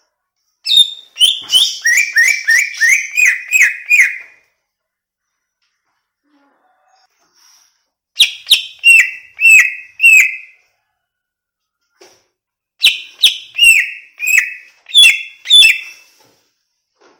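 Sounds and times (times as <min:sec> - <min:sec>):
greater green leafbird singing loud downslurred whistles: 0:00.6 - 0:04.4, 0:08.2 - 0:10.6, 0:12.8 - 0:16.2.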